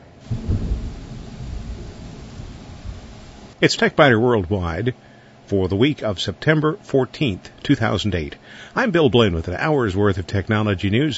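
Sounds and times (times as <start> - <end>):
steady rain on a dark stormy morning: 0.0 - 4.8
thunder rumbling in a storm: 0.0 - 4.8
speech: 3.6 - 11.1.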